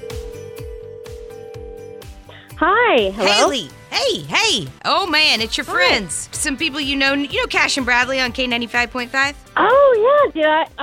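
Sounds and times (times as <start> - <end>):
telephone ring tone on an outgoing call: 0.0 - 2.1
speech: 2.6 - 10.8
pulsing thumping music beat: 3.2 - 9.9.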